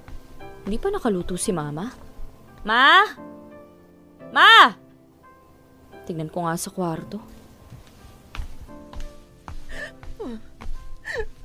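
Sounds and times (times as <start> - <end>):
speech: 0.7 - 2.0, 2.6 - 3.3, 4.3 - 4.8, 6.1 - 7.4
mother crying and whimpering in her room at home: 9.7 - 11.4.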